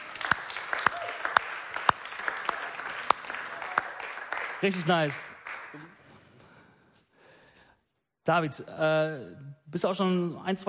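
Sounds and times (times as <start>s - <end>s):
audience clapping: 0.0s - 6.2s
speech: 4.6s - 5.9s, 8.3s - 10.6s.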